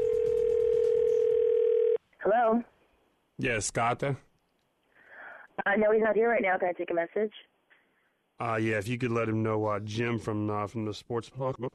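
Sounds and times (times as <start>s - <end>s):
telephone dial tone: 0.0s - 2.0s
speech: 3.4s - 4.3s, 5.6s - 7.5s, 8.4s - 11.7s.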